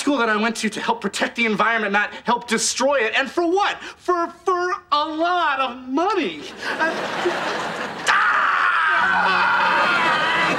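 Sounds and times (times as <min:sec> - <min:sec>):
speech: 0:00.1 - 0:08.2, 0:09.0 - 0:10.5
laughter: 0:06.4 - 0:10.5
man screaming: 0:08.0 - 0:10.5.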